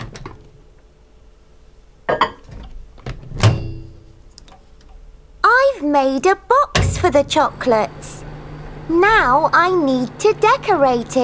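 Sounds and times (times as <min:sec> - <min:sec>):
microwave oven low steady hum: 0:05.5 - 0:11.2
speech: 0:05.8 - 0:08.2, 0:08.9 - 0:11.2
microwave oven door clunking and latching: 0:06.8 - 0:07.4.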